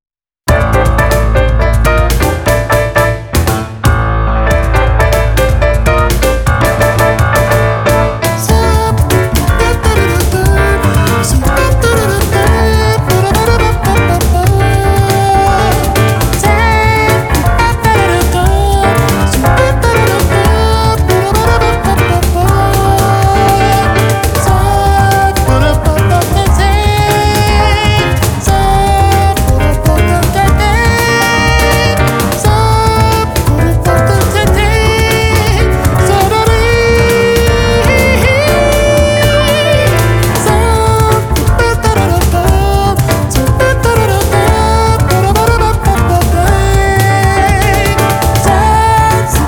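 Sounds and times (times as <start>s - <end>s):
jazz with cajon: 0.4s - 49.4s.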